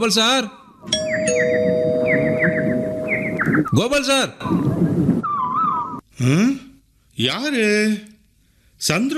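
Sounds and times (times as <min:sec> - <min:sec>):
speech: 0:00.0 - 0:01.8, 0:03.7 - 0:05.1, 0:06.2 - 0:06.6, 0:07.2 - 0:08.1, 0:08.8 - 0:09.1
electronic doorbell ringing at a house door: 0:00.9 - 0:03.6.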